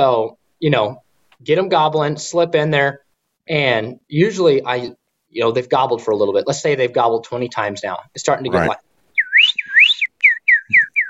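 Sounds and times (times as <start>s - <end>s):
speech: 0.0s - 8.9s
person whistling an imitation of songbirds chirping: 9.1s - 11.0s.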